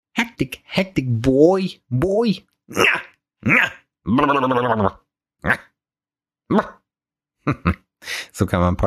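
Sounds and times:
speech: 0.4 - 5.7, 6.5 - 6.8, 7.4 - 8.8
person imitating a barking dog: 2.7 - 5.8, 6.5 - 6.8.

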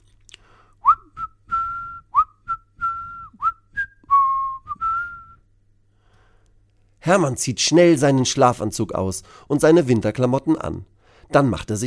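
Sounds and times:
bright cheerful whistled tune of someone leaving: 0.8 - 5.4
speech: 7.1 - 11.8.

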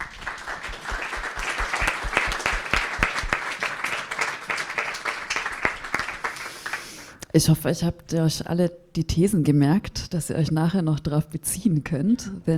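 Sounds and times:
room full of people applauding: 0.0 - 7.1
speech: 7.4 - 12.5.

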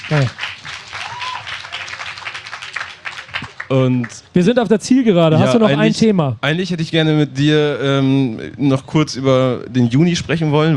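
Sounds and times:
group applauding with dense steady clapping: 0.0 - 4.3
speech: 0.1 - 0.6, 3.7 - 10.7.

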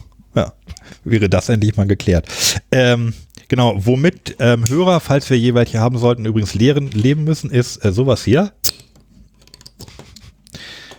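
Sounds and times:
speech: 0.4 - 8.7
lemonade bottle being opened with a sharp hiss: 8.6 - 8.9
soft handling clatter and rustling: 8.9 - 10.9.

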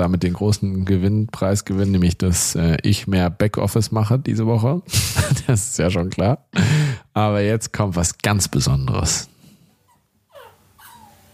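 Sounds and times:
speech: 0.0 - 9.4
laughter: 4.9 - 5.6
puppy whimpering: 9.8 - 11.3.

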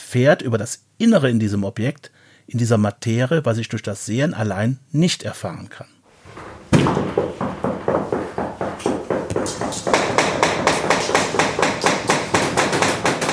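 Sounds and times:
speech: 0.1 - 6.0
hammering on a hard object: 6.3 - 13.3.

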